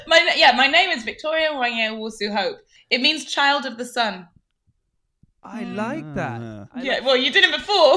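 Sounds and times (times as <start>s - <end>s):
speech: 0.1s - 4.3s, 5.5s - 7.9s
person imitating cat meows with a human voice: 5.5s - 6.8s.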